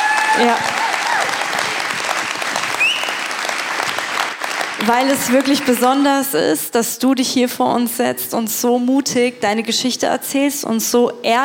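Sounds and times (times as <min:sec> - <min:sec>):
audience applause: 0:00.0 - 0:06.3
speech: 0:00.4 - 0:00.8, 0:04.8 - 0:11.4
whistle: 0:02.8 - 0:03.4.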